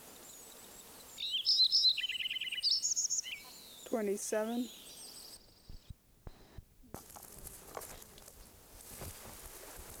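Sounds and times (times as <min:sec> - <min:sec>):
Lincoln's sparrow singing: 0:00.3 - 0:05.9
speech: 0:03.9 - 0:04.8.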